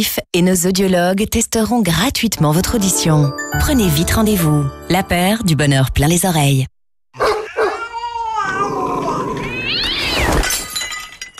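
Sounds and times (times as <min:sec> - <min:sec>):
speech: 0:00.0 - 0:07.3
dog snarling and barking: 0:07.2 - 0:07.8
cat yowling: 0:07.2 - 0:10.3.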